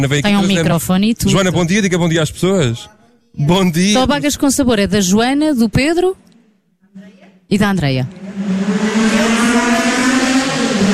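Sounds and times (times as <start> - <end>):
speech: 0.0 - 6.3, 7.5 - 9.6
race car engine roaring along a circuit: 8.0 - 10.9.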